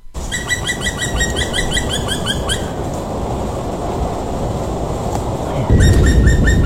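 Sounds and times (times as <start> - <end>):
steady low rumble: 0.0 - 6.6
song played on the radio: 0.2 - 2.8, 5.7 - 6.6.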